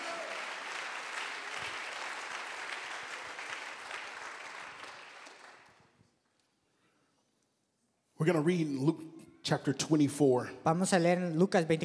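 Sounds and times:
audience clapping hands in praise: 0.0 - 5.9
speech: 8.2 - 11.8.

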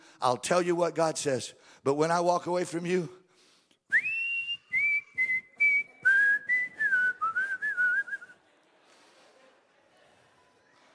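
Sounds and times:
speech: 0.2 - 3.2
person whistling a song's harmony line: 3.9 - 8.3.

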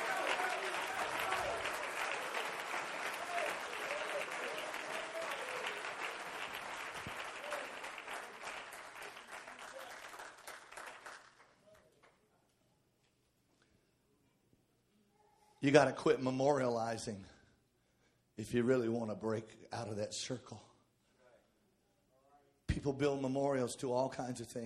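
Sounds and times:
audience clapping hands enthusiastically: 0.0 - 12.2
speech: 15.6 - 17.4, 18.4 - 20.7, 22.8 - 24.6.

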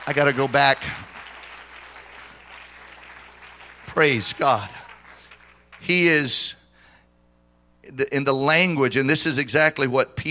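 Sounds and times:
church congregation clapping hands: 0.0 - 6.3
speech: 0.1 - 1.1, 4.0 - 4.8, 5.8 - 6.6, 7.9 - 10.3.

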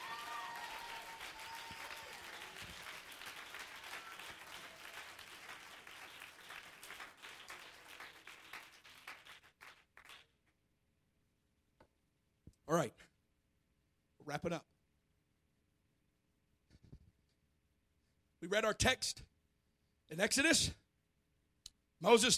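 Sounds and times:
large audience clapping hands: 0.0 - 10.6
speech: 12.7 - 13.1, 14.3 - 14.7, 18.5 - 19.3, 20.1 - 20.8, 22.0 - 22.3.

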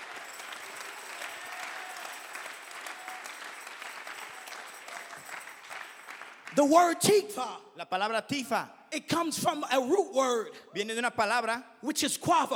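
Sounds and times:
congregation clapping their hands: 0.0 - 7.2
speech: 6.6 - 12.5.

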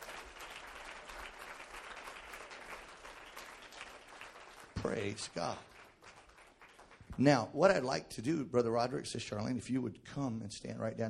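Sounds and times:
audience clapping in sustained applause: 0.0 - 7.5
speech: 4.8 - 5.7, 7.2 - 11.0.

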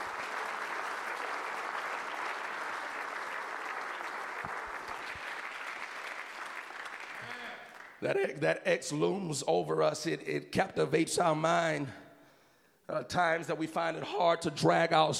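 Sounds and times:
audience at a church service clapping: 0.0 - 8.0
speech: 8.0 - 12.0, 12.9 - 15.1.

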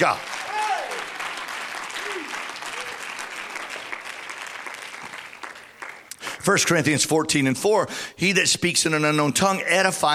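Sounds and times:
speech: 0.0 - 0.3, 6.4 - 10.1
audience clapping hands: 0.0 - 7.0.

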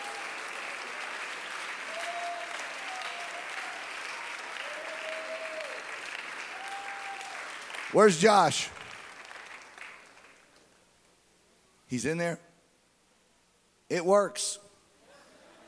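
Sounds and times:
crowd clapping: 0.0 - 10.8
speech: 7.9 - 8.8, 11.9 - 12.4, 13.9 - 14.6.

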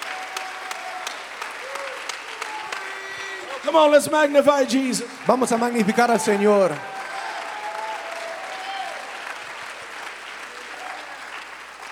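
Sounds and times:
church congregation clapping hands during a service: 0.0 - 11.9
speech: 3.6 - 6.9.

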